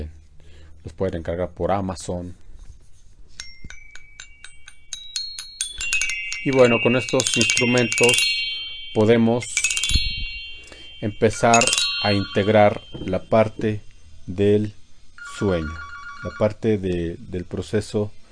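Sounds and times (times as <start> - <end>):
speech: 0.8 - 2.4, 6.4 - 9.6, 11.0 - 14.8, 15.4 - 18.2
phone ringing with electronic tones: 15.2 - 16.8.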